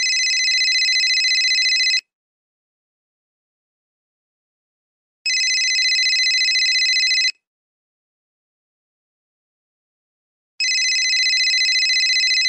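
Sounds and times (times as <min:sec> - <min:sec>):
iPhone ringtone: 0:00.0 - 0:02.0, 0:05.3 - 0:07.4, 0:10.6 - 0:12.4.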